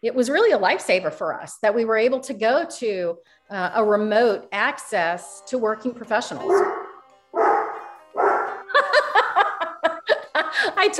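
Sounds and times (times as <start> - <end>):
speech: 0.0 - 7.4, 10.8 - 10.9
dog barking: 6.4 - 8.6
laughter: 8.5 - 10.9.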